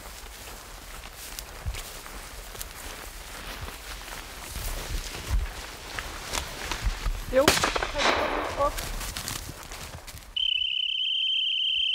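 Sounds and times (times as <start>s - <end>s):
rustling, footstep-like noise: 0.0s - 10.4s
rifle shot fired into the air outdoors: 7.4s - 8.7s
insects chirping: 10.3s - 11.9s
high-pitched whistle blast for a hunting dog: 10.4s - 11.9s.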